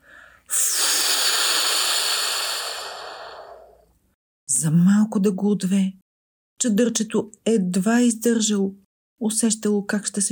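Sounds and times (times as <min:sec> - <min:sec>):
person blowing hard into the mic to imitate a strong gust of wind: 0:00.0 - 0:03.8
speech: 0:04.6 - 0:06.0, 0:06.6 - 0:10.3.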